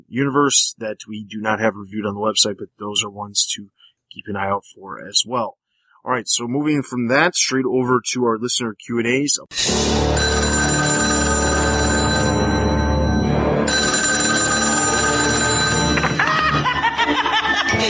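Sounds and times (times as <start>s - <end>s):
speech: 0.1s - 11.8s
telephone ringing with bright electronic tone: 10.1s - 16.6s
laughter: 16.0s - 17.8s.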